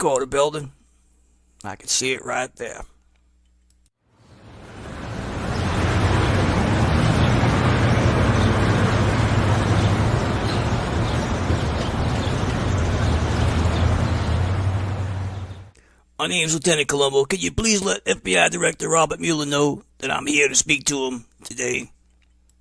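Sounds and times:
speech: 0.0s - 0.8s, 1.6s - 2.9s, 16.2s - 22.0s
constant wash of passing vehicles: 4.2s - 15.8s
low engine hum: 4.2s - 15.8s
steady dense roar of city street traffic: 4.2s - 15.8s.

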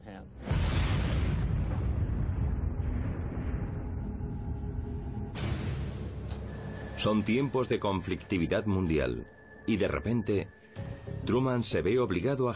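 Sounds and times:
atomic bomb explosion roar: 0.4s - 7.8s
speech: 7.0s - 12.5s.

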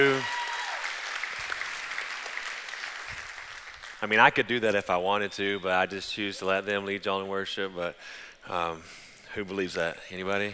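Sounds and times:
speech: 0.0s - 0.4s, 4.0s - 10.5s
audience applauding: 0.0s - 4.1s.

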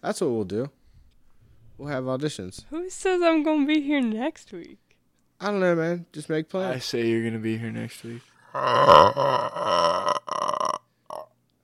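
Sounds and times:
speech: 0.0s - 0.8s, 1.8s - 4.8s, 5.4s - 10.1s
long loud burp: 8.5s - 11.3s.

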